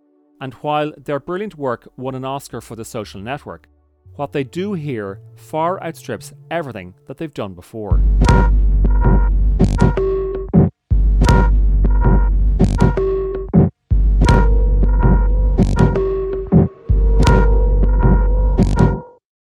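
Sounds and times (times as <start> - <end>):
speech: 0.4 - 9.0
throbbing electronic film score drone: 7.9 - 19.0
pulsing percussive hits: 8.0 - 10.1, 14.0 - 18.8.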